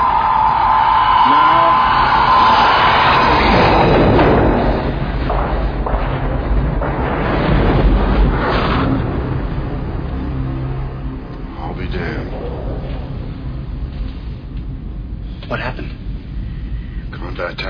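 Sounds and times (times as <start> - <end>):
torpedo exploding underwater with churning roar: 0.0 - 13.9
steady tone: 0.0 - 17.0
deep rumble: 0.0 - 17.6.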